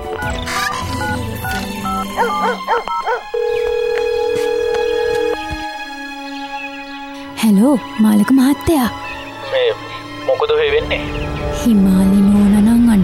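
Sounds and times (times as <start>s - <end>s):
mobile phone ringing with an incoming call: 0.1s - 5.6s
speech: 7.6s - 9.8s, 10.4s - 12.2s.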